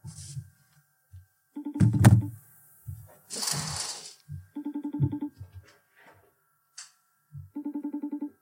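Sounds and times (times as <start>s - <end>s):
buzzy pulsing phone ringback tone: 1.6s - 2.3s, 4.5s - 5.4s, 7.5s - 8.3s
handling thumps: 1.8s - 3.1s.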